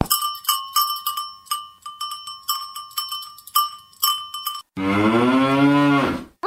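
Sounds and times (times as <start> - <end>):
cowbell clanking: 0.0 - 4.7
cow mooing: 4.8 - 6.3.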